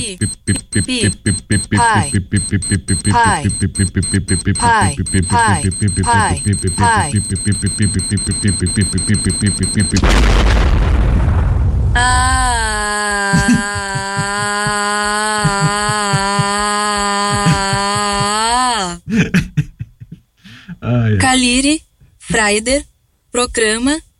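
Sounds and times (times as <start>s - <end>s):
long steady high-pitched alarm tone: 0.0s - 10.0s
time bomb electronic beeping: 0.0s - 10.0s
speech: 0.0s - 10.8s, 12.0s - 13.9s, 20.9s - 24.1s
laughter: 0.6s - 10.0s, 13.2s - 20.2s
loud explosion: 10.0s - 12.8s.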